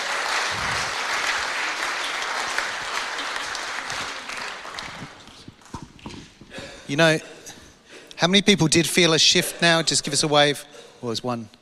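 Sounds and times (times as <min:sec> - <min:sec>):
audience applause: 0:00.0 - 0:06.2
speech: 0:06.9 - 0:07.4, 0:08.2 - 0:11.5.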